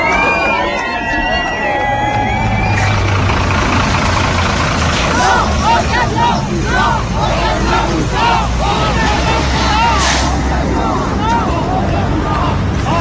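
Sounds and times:
crowd talking and calling out at a road blockade: 0.0s - 13.0s
big truck engine idling at a road blockade: 1.1s - 13.0s.

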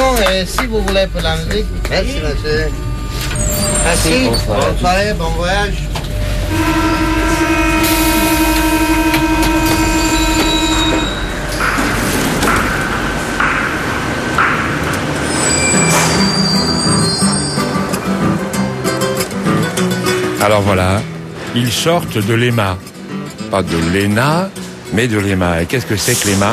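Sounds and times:
heavy rumble of rolling metro carriages: 0.0s - 26.5s
speech: 0.2s - 5.9s, 6.5s - 7.6s, 20.4s - 22.9s, 23.5s - 26.5s
metro train wheels squealing on the track: 2.2s - 12.8s, 15.0s - 18.4s.

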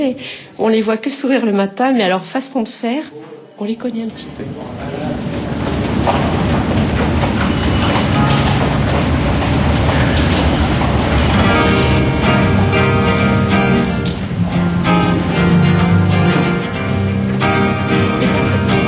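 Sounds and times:
speech: 0.0s - 5.4s
RER commuter train rolling along the rails: 4.4s - 18.8s.

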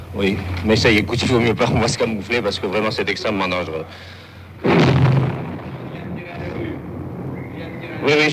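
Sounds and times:
speech: 0.1s - 4.2s, 8.0s - 8.3s
tank firing grapeshot at a wall: 4.6s - 7.4s.

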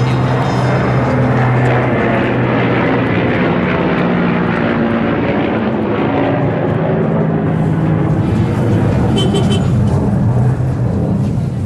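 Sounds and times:
faint voices: 0.0s - 3.0s
airplane engine roar passing overhead: 0.0s - 11.6s
street traffic noise on the grand bazaar avenue in Kabul Afghanistan: 0.0s - 11.6s.

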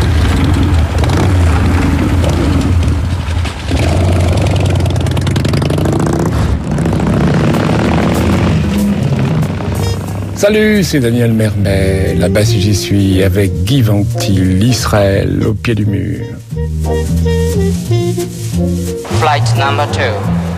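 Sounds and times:
police car engine running: 0.0s - 5.5s, 6.6s - 13.8s
speech: 10.4s - 20.4s.

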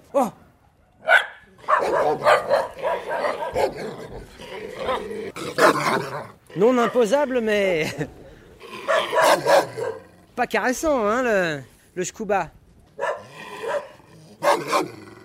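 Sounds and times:
speech: 0.1s - 0.4s, 3.6s - 8.2s, 10.4s - 12.6s
large mountain shepherd dog barking: 0.7s - 7.1s, 8.8s - 10.2s, 13.0s - 15.2s.

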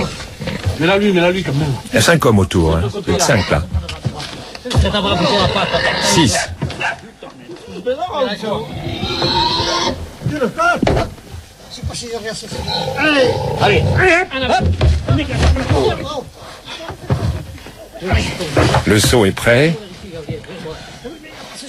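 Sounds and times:
speech: 0.8s - 17.0s, 18.0s - 21.6s
pig of about 180-190 kilos squealing: 3.1s - 3.6s, 5.1s - 6.5s, 8.4s - 10.2s, 12.4s - 14.3s.

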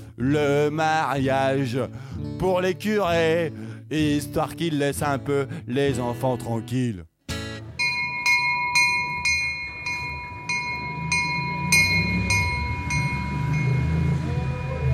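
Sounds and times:
speech: 0.2s - 7.1s
bright bell ringing at Lourdes station: 7.8s - 14.9s
train pulling out of Lourdes station: 8.4s - 14.9s.

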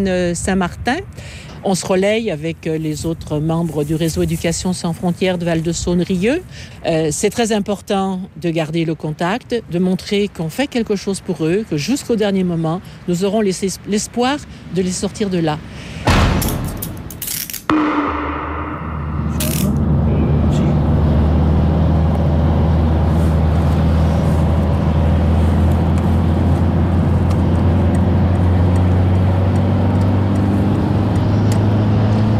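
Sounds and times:
speech: 0.0s - 16.5s, 17.7s - 18.4s
sharp knocks: 16.0s - 20.2s
heavy truck rumbling along the road with engine drone and tire roar: 18.6s - 32.3s.

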